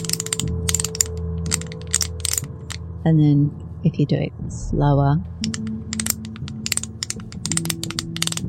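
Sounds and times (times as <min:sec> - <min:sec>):
rapid dry ratcheting clicks from a small handheld object: 0:00.0 - 0:02.8, 0:05.4 - 0:08.4
speech: 0:03.0 - 0:06.0.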